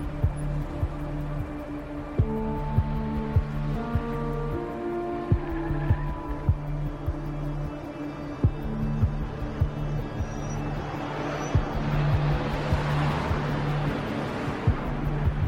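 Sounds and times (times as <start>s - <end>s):
car engine humming while driving along a road: 0.0s - 15.4s
road noise: 0.0s - 15.4s.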